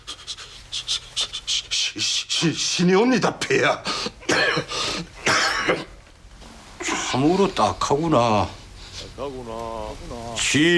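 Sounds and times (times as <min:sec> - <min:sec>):
speech: 0:02.0 - 0:04.8, 0:07.2 - 0:08.6, 0:09.2 - 0:10.7
harsh two-part coughs: 0:04.2 - 0:06.0.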